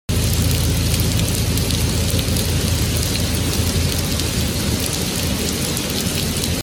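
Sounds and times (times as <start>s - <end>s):
rain: 0.1s - 6.6s.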